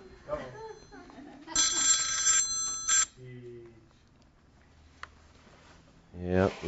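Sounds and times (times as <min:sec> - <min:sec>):
mobile phone ringtone with bright electronic chiming tone during a sermon: 0:00.0 - 0:03.2.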